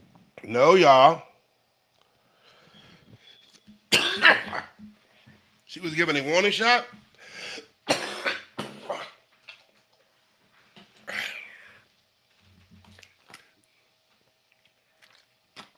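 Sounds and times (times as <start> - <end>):
speech: 0.4 - 1.3, 5.7 - 8.0
person coughing hard: 3.9 - 4.8, 7.9 - 9.2.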